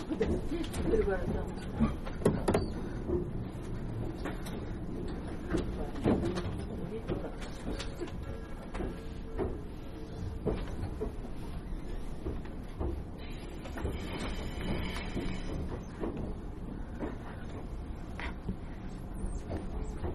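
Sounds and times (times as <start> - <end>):
train rumbling on rails heard from inside the car: 0.0 - 20.1.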